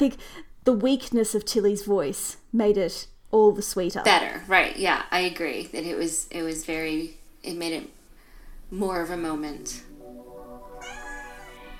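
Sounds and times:
speech: 0:00.0 - 0:08.0, 0:08.7 - 0:09.9
cat meowing: 0:10.8 - 0:11.7.

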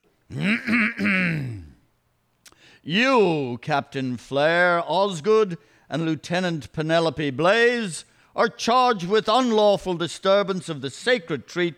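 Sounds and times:
speech: 0:00.3 - 0:01.5, 0:02.8 - 0:11.7
man clearing his throat dramatically in a groaning rasp: 0:00.3 - 0:01.8.

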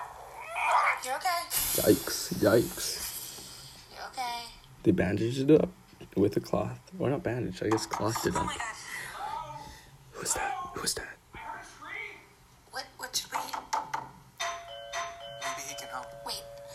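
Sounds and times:
speech: 0:01.0 - 0:03.1, 0:04.2 - 0:08.8, 0:10.2 - 0:11.2
soft whispery voices: 0:09.0 - 0:12.1
doorbell ding-dong chime: 0:14.4 - 0:16.7.

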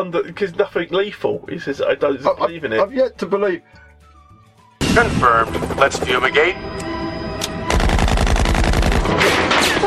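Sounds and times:
speech: 0:00.0 - 0:03.8, 0:05.0 - 0:06.9
machine gun fire: 0:07.7 - 0:09.7.

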